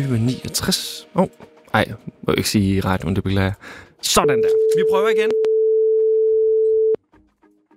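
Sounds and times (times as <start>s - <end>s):
speech: 0.0s - 5.4s
telephone ringing tone as a radio host phones a listener: 4.2s - 7.0s.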